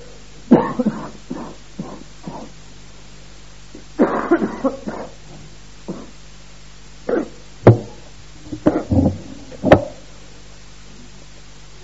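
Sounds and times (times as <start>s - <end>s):
person coughing: 0.5s - 2.6s, 4.0s - 5.2s, 5.9s - 6.2s, 7.1s - 7.4s, 8.7s - 9.0s.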